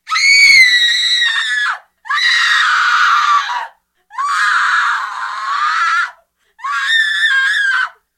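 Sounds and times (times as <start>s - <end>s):
woman screaming: 0.1s - 8.0s.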